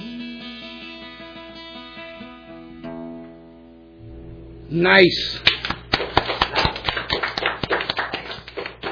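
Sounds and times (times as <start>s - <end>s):
speech: 4.7s - 5.5s
soft polite golf clap: 5.3s - 8.9s.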